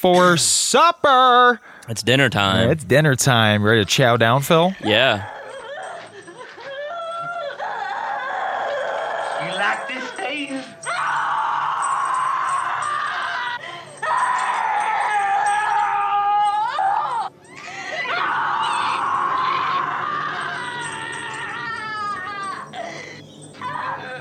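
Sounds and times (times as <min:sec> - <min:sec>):
speech: 0:00.0 - 0:05.4
woman screaming and wailing in a film dinner scene: 0:06.7 - 0:24.1.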